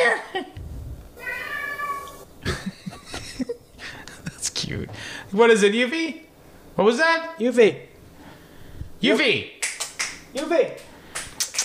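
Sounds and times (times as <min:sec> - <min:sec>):
cat yowling with long wavering yowl and rough cries: 0:01.2 - 0:02.2
laughter: 0:02.4 - 0:04.6
speech: 0:04.7 - 0:06.2, 0:06.8 - 0:07.9, 0:09.0 - 0:09.6, 0:10.3 - 0:10.8.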